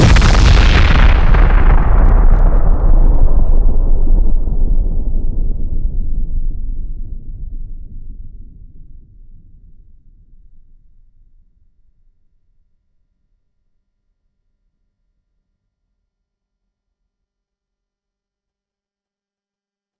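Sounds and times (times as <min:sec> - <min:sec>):
big nuclear explosion: 0:00.0 - 0:08.9.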